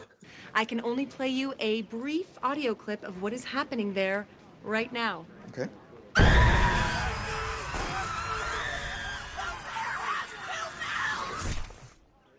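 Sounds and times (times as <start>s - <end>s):
speech: 0.6s - 6.4s
harsh chaotic noises: 6.2s - 11.9s
people screaming and yelling frantically: 6.2s - 11.9s.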